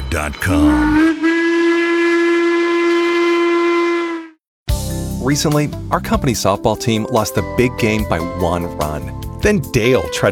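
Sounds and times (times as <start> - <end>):
speech: 0.1 - 1.2, 5.3 - 10.3
steam train whistle blast with breathy hiss: 0.6 - 4.4.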